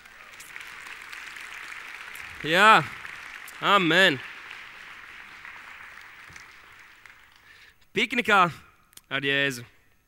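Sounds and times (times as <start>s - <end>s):
church audience applauding: 0.0s - 7.7s
speech: 2.4s - 3.0s, 3.6s - 4.3s, 8.0s - 9.7s.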